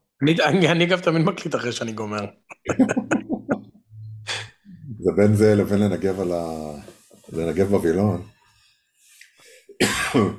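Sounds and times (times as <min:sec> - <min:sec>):
speech: 0:00.2 - 0:03.2, 0:05.0 - 0:08.3, 0:09.8 - 0:10.3
laughter: 0:02.6 - 0:03.7
harsh coughs from a person with a cold: 0:09.8 - 0:10.3.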